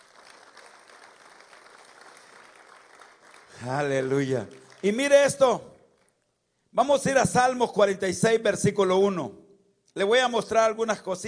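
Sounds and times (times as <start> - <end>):
audience applause: 0.0 - 5.2
speech: 3.6 - 5.7, 6.8 - 9.4, 10.0 - 11.2.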